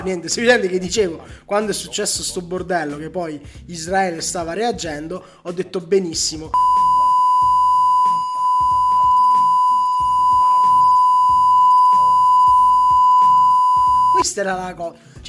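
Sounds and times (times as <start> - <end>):
speech: 0.0 - 6.9, 14.4 - 15.2
high-pitched censorship bleep tone: 6.6 - 14.2.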